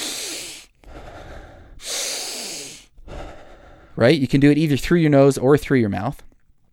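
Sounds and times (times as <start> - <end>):
deep forceful inhales close to the mic: 0.0 - 4.0
softer relaxed exhales close to the mic: 0.0 - 4.0
speech: 4.0 - 6.3.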